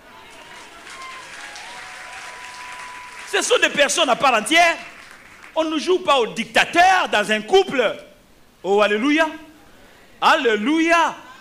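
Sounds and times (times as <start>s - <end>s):
audience applause and cheering: 0.0s - 4.0s, 4.6s - 5.6s
speech: 3.3s - 4.9s, 5.6s - 9.4s, 10.2s - 11.2s.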